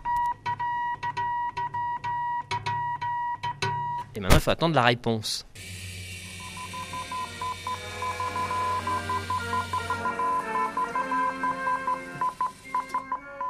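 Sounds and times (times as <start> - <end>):
Morse code beeps from an electric telegraph: 0.0 - 4.1, 6.4 - 13.4
speech: 4.2 - 5.8.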